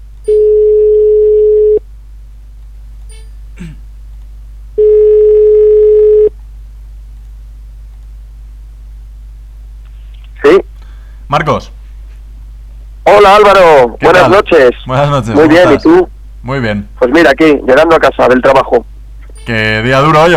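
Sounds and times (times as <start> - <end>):
outgoing telephone call electronic ring tones: 0.3 - 1.8, 4.8 - 6.3
speech: 11.3 - 11.8, 13.0 - 18.9, 19.5 - 20.3.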